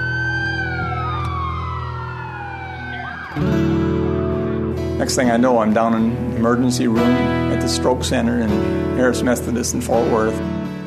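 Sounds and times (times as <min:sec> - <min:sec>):
ambulance siren wailing: 0:00.0 - 0:04.7
speech: 0:03.4 - 0:03.7, 0:05.0 - 0:10.6.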